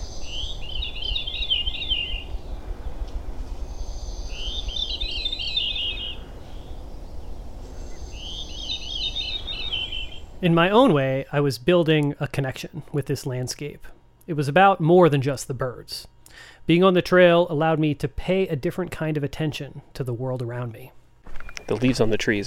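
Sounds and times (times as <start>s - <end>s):
wild veery singing in the morning on the Appalachian Trail: 0.0s - 12.1s
steady background hiss: 0.0s - 22.4s
speech: 10.4s - 21.0s, 21.7s - 22.4s.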